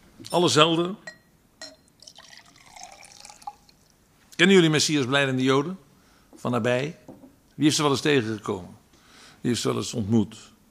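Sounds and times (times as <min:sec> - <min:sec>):
speech: 0:00.2 - 0:01.2, 0:04.4 - 0:05.8, 0:06.4 - 0:07.0, 0:07.6 - 0:08.8, 0:09.4 - 0:10.5
light glass clink: 0:01.0 - 0:03.6
water poured into a glass: 0:02.0 - 0:03.9.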